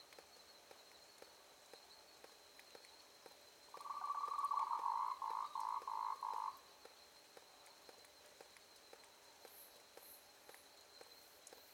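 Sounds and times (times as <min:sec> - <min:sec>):
frog calling in a trill in the evening: 0:03.8 - 0:06.6.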